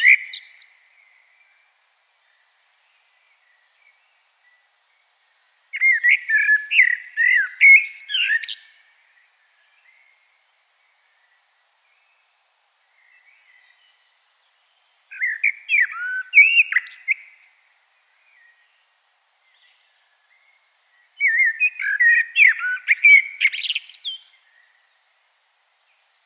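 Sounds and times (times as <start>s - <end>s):
common blackbird Turdus merula singing: 0.0s - 26.2s.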